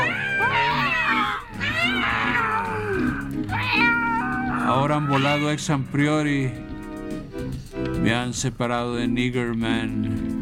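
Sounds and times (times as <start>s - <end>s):
cat yowling in long wavering wails: 0.0s - 5.6s
speech: 4.9s - 6.7s, 8.0s - 10.3s.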